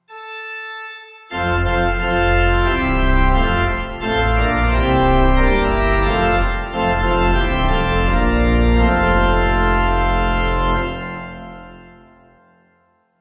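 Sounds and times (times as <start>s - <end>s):
Lutheran pipe organ playing: 0.1s - 12.4s.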